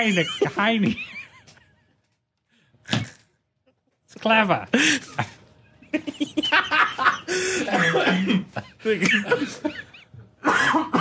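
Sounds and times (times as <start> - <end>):
speech: 0.0 - 1.2, 4.2 - 10.9
laughter: 0.0 - 2.2, 4.7 - 10.4
person coughing: 7.6 - 9.4, 10.4 - 10.9.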